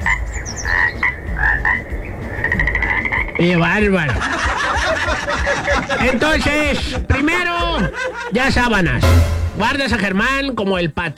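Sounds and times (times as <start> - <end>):
toad croaking: 0.0 - 3.7
speech: 3.4 - 4.4, 5.8 - 11.1
laughter: 3.6 - 9.0.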